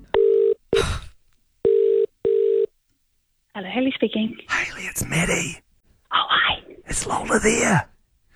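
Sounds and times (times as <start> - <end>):
electronic telephone dialing tones: 0.1 - 0.6, 1.6 - 2.7
speech: 3.6 - 5.7, 6.9 - 7.9.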